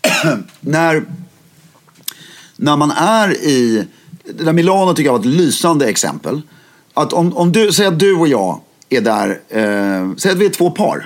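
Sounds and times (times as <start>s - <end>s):
person coughing: 0.0s - 0.6s
speech: 0.2s - 1.2s, 2.6s - 11.0s.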